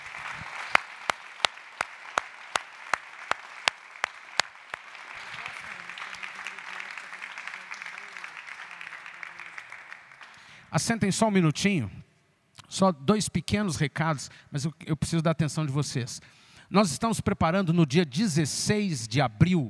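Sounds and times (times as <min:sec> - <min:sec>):
congregation clapping rhythmically in unison in a church: 0:00.0 - 0:10.6
congregation applauding in a church: 0:00.0 - 0:10.7
speech: 0:10.8 - 0:12.0, 0:12.7 - 0:19.6.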